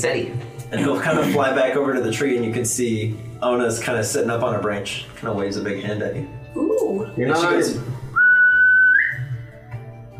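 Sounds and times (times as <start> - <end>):
speech: 0.0 - 8.0
person whistling: 8.1 - 9.5.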